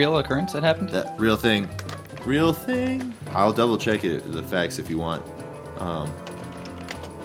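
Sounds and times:
speech: 0.0 - 6.3
typing on a computer keyboard inside a pickup truck: 6.1 - 7.2.

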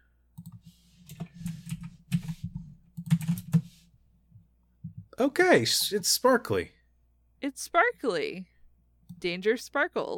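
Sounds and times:
typing on a computer keyboard: 0.4 - 3.7
speech: 5.2 - 6.8, 7.4 - 8.5, 9.2 - 10.1.

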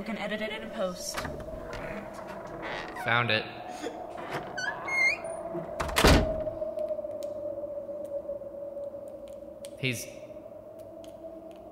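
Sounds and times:
speech: 0.0 - 1.6, 3.0 - 4.5, 9.8 - 10.2
steady low hum: 0.0 - 11.7
creaky door opening: 1.0 - 6.5.

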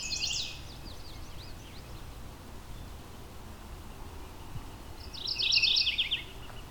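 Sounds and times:
bird calling from a tree: 0.0 - 2.9, 4.2 - 6.6
soft hiss of wind: 0.0 - 6.6.

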